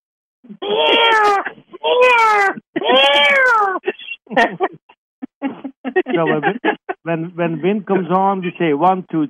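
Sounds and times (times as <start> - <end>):
cat meowing with long drawn-out meows and chirpy mews: 0.6 - 3.8
laughter: 0.6 - 8.8
speech: 4.4 - 4.7, 6.2 - 9.2.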